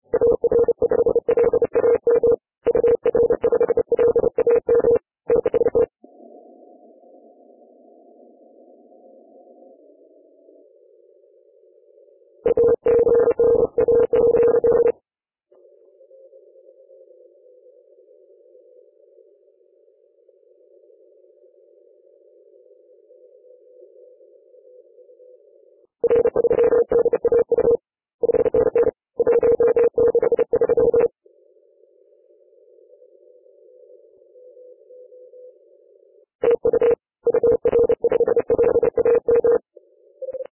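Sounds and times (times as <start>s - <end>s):
40M band CW morse code tones: 0.2s - 5.9s, 12.5s - 14.9s, 26.0s - 31.1s, 36.4s - 39.6s.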